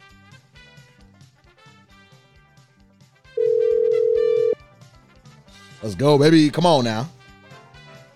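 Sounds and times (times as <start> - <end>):
ringback tone from an outgoing phone call: 3.4 - 4.6
quiet music: 3.4 - 8.1
speech: 5.8 - 7.2.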